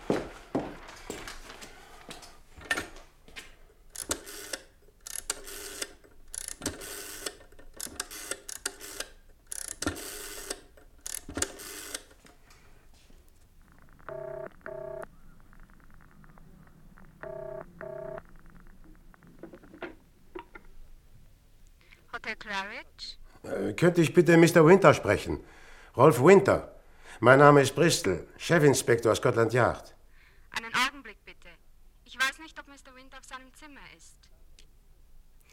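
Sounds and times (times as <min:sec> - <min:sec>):
telephone touch-tone dialing beeps: 0:14.1 - 0:15.1
speech: 0:22.5 - 0:30.0.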